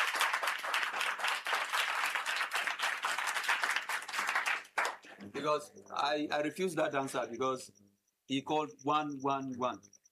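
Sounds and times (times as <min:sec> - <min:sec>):
room full of people clapping: 0:00.0 - 0:05.3
speech: 0:05.4 - 0:09.9.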